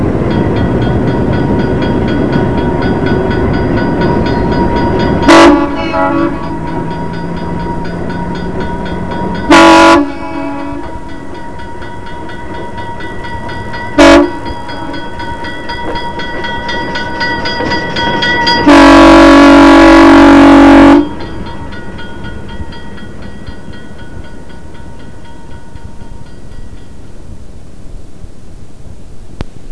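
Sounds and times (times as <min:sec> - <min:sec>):
locomotive bell: 0:00.1 - 0:27.4
ALCO locomotive horn: 0:05.2 - 0:06.9, 0:09.5 - 0:11.1, 0:13.9 - 0:15.0, 0:18.6 - 0:21.3.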